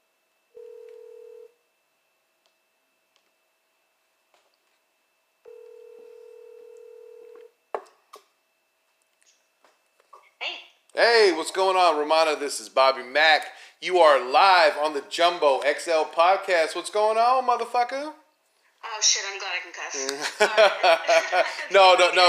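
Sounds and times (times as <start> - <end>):
telephone ring tones over a line: 0.5 - 1.6, 5.4 - 7.5
speech: 11.0 - 18.2, 19.0 - 22.2
laughter: 20.0 - 22.2.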